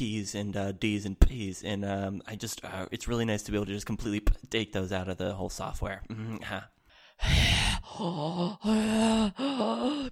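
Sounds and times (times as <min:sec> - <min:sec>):
speech: 0:00.0 - 0:10.1
breathy gasp: 0:06.9 - 0:10.1.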